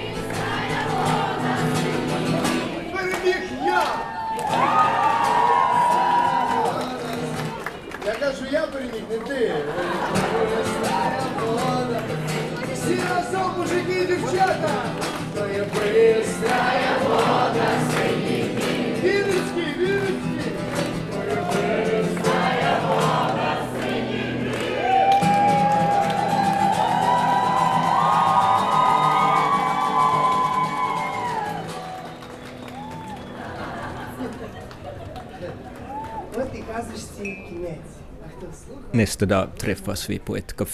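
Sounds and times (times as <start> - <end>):
crowd singing together with street musicians: 0.0 - 3.1, 9.6 - 25.1
street musicians playing: 0.0 - 8.6, 9.3 - 38.8
crowd noise: 0.0 - 40.7
laughter: 9.2 - 11.8, 33.1 - 36.0
speech: 39.2 - 40.7.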